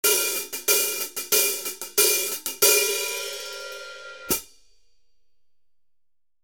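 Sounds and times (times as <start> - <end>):
14in Mastersound hi-hat cymbals: 0.0 - 4.6.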